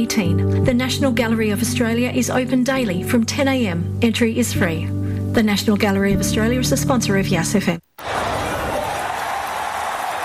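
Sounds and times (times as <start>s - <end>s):
speech: 0.0s - 7.8s
crowd cheering and roaring in a radio station sweeper: 8.0s - 10.2s.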